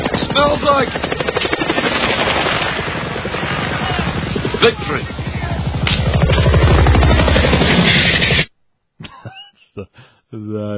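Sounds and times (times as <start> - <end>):
helicopter rotor chopping while landing: 0.0 - 8.5
speech: 0.4 - 1.2, 4.6 - 5.2, 10.5 - 10.7.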